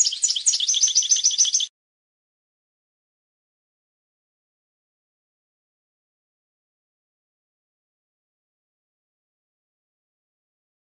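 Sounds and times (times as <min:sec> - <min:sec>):
European goldfinch singing a rapid liquid twitter: 0:00.0 - 0:01.7.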